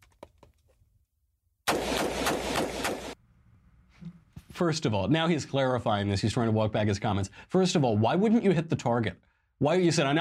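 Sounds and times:
rifle fired rapidly in semi-automatic mode: 0:01.7 - 0:03.2
speech: 0:04.6 - 0:10.2.

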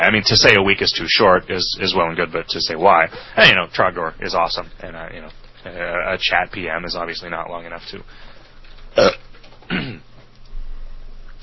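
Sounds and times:
speech: 0:00.0 - 0:08.3, 0:09.0 - 0:10.0
quiet hiss: 0:00.0 - 0:11.4
belches: 0:08.9 - 0:10.1.

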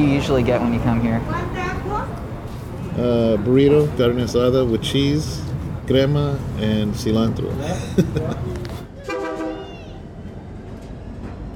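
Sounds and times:
speech: 0:00.0 - 0:02.2, 0:03.0 - 0:08.6
outdoor rumble: 0:00.0 - 0:11.5
laughter: 0:07.5 - 0:09.0
train horn blast beside train tracks: 0:09.0 - 0:09.7.

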